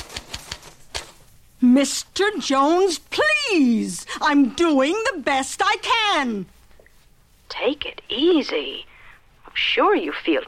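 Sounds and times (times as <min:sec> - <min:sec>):
typewriter keystrokes: 0:00.0 - 0:01.1
speech: 0:01.8 - 0:06.6, 0:07.6 - 0:08.9, 0:09.6 - 0:10.4.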